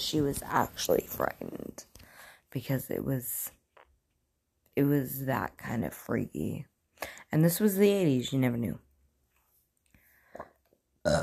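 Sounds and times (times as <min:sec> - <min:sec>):
speech: 0:00.0 - 0:01.9, 0:02.5 - 0:03.6, 0:04.8 - 0:08.8, 0:10.4 - 0:11.2
burp: 0:10.3 - 0:11.2.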